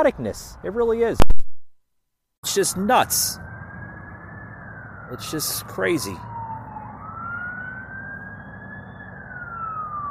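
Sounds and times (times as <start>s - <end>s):
steady low rumble of traffic: 0.0s - 1.2s, 2.4s - 10.0s
speech: 0.0s - 1.4s, 2.4s - 3.5s, 5.1s - 6.3s
wailing emergency siren outside the studio: 2.4s - 10.0s.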